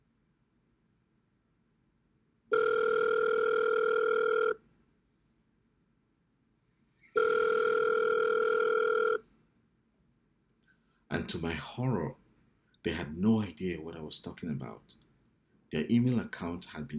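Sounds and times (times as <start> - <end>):
telephone ringing tone through the earpiece: 2.5 - 4.6, 7.2 - 9.2
speech: 11.3 - 12.2, 12.8 - 15.0, 15.7 - 16.9.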